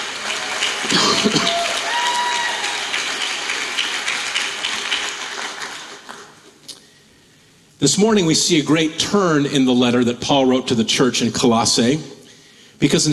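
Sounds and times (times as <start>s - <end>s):
roomful of people applauding: 0.0s - 6.6s
whoops from the audience: 0.2s - 3.1s
speech: 0.8s - 1.6s, 7.8s - 12.2s, 12.8s - 13.1s.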